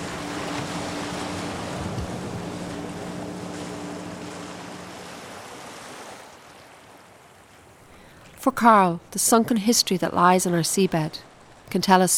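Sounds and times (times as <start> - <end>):
wind buffeting: 0.0 - 5.0
low boat engine drone: 0.0 - 5.7
heavy surf crashing and churning around a boat: 0.0 - 7.8
speech: 8.4 - 12.1.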